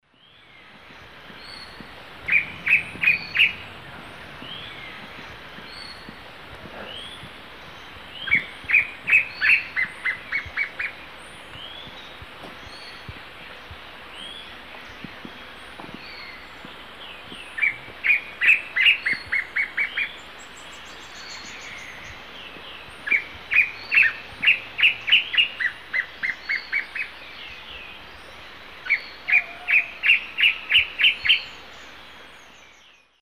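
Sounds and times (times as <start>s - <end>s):
Cercomacra serva duet in the Eastern Lowlands of South America: 0.4s - 32.6s.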